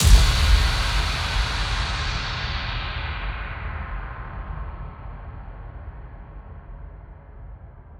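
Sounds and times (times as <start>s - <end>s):
impact: 0.0s - 5.2s.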